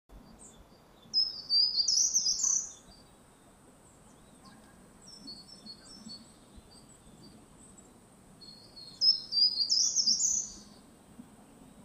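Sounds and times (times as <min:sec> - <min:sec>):
short-toed treecreeper: 0:00.1 - 0:10.9.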